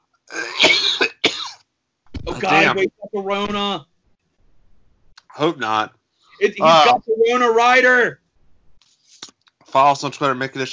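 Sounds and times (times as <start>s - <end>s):
harsh coughing fit: 0.3s - 1.6s
speech: 2.4s - 3.9s, 5.4s - 8.2s, 9.7s - 10.7s.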